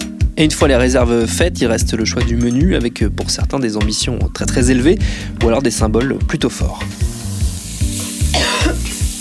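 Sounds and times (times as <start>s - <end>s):
speech: 0.4s - 7.2s
food sizzling while frying: 6.7s - 9.1s
person coughing from spices and chili: 8.3s - 9.0s.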